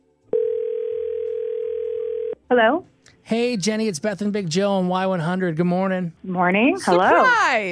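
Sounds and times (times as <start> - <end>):
steady phone line tone: 0.3 - 2.3
speech: 2.5 - 7.7.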